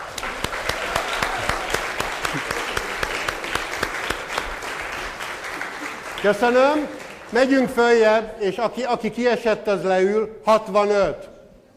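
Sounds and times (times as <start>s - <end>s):
crowd applauding audience members who scored 60 or more: 0.0s - 8.1s
speech: 6.2s - 11.3s.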